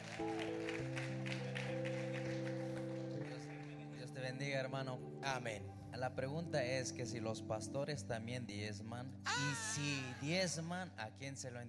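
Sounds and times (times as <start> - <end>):
audience applauding: 0.0 - 4.4
sustained keyboard or organ chords: 0.0 - 11.6
speech: 0.2 - 1.0, 4.3 - 11.6.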